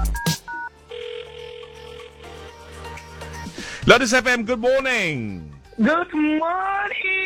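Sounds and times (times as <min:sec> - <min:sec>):
telephone keypad touch-tone beeps while dialing: 0:00.1 - 0:00.7
telephone ringing tone: 0:00.1 - 0:02.1
speech: 0:03.9 - 0:07.1.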